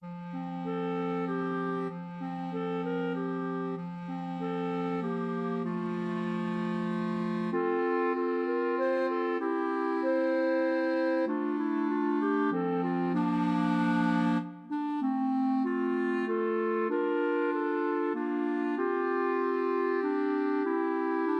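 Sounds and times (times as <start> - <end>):
clarinet trio playing: 0.0 - 21.3.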